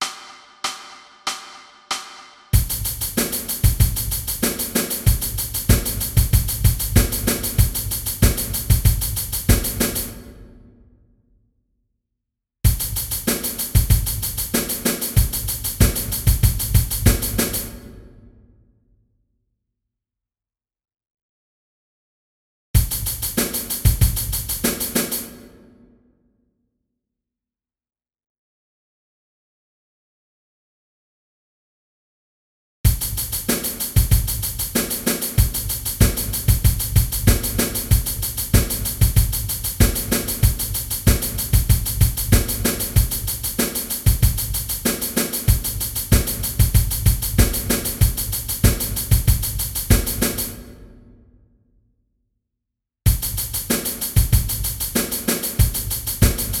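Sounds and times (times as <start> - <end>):
drum loop: 0.0 - 10.4, 12.7 - 18.0, 22.8 - 25.2, 32.9 - 50.7, 53.1 - 56.5.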